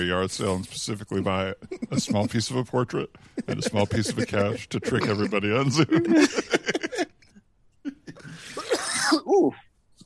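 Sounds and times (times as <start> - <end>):
speech: 0.0 - 6.8
laughter: 1.1 - 2.6, 3.4 - 7.2
dry cough with harsh bursts and a breathy rasping fit: 3.4 - 7.1, 7.9 - 9.3.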